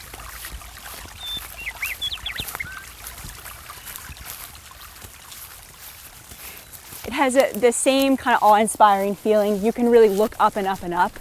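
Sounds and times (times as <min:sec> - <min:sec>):
bubbling stream in a forest: 0:00.0 - 0:11.1
high bird chirps and whistles in a forest: 0:01.2 - 0:02.9
speech: 0:07.1 - 0:11.1.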